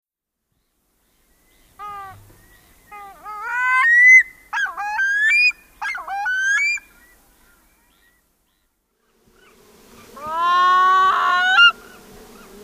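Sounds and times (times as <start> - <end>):
Pacific loon calling with nasal notes and harmonic wail: 1.8 - 2.3, 2.9 - 6.9, 10.2 - 12.0.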